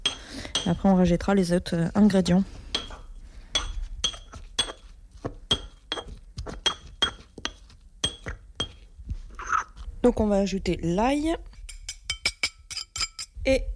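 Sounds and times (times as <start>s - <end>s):
speech: 0.6s - 2.6s, 10.1s - 11.5s, 13.5s - 13.7s
pestle crushing basil with coarse salt in a mortar: 2.7s - 8.9s.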